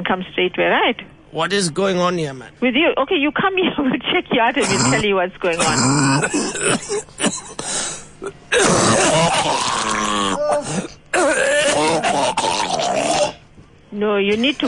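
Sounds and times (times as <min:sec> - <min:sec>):
speech: 0:00.0 - 0:07.2, 0:08.2 - 0:14.6
loud harsh hacking coughs: 0:04.6 - 0:13.4
person groaning with strain: 0:05.6 - 0:06.8, 0:08.5 - 0:13.4.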